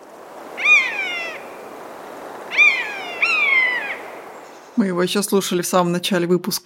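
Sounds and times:
common buzzard mewing calls: 0.6 - 1.7, 2.4 - 4.3
speech: 4.8 - 6.6.

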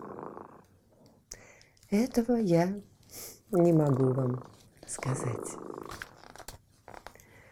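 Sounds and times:
cat purring softly: 0.0 - 1.1, 3.6 - 6.4
speech: 1.9 - 6.0.

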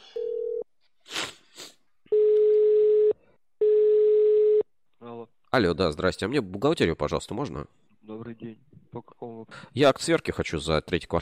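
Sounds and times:
telephone ringing tones at a single pitch: 0.2 - 0.6, 2.1 - 4.6
speech: 5.5 - 11.2.

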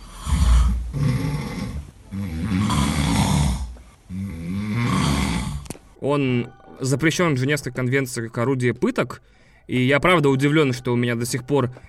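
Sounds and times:
loud rattling human snoring: 0.0 - 5.8
speech: 6.0 - 11.8.

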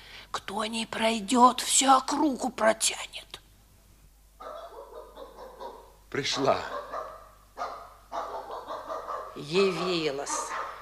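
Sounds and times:
low hum: 0.0 - 10.8
speech: 0.5 - 3.4, 6.1 - 6.8, 9.4 - 10.6
dog barking: 4.4 - 10.8.

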